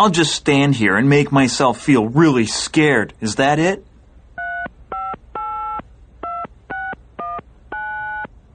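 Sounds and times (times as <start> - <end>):
speech: 0.0 - 3.9
telephone keypad dialing tones: 4.4 - 8.3.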